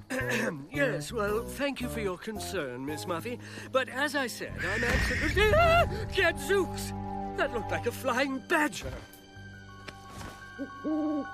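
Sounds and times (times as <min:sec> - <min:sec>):
speech: 0:00.2 - 0:09.1, 0:10.6 - 0:11.3
owl hooting: 0:04.5 - 0:05.8, 0:10.6 - 0:11.3.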